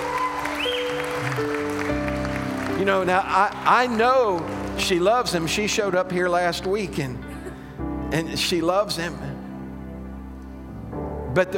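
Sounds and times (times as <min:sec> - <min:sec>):
congregation applauding: 0:00.0 - 0:06.1
organ or keyboard chords: 0:00.0 - 0:11.5
speech: 0:02.8 - 0:07.3, 0:08.1 - 0:09.3, 0:11.4 - 0:11.5.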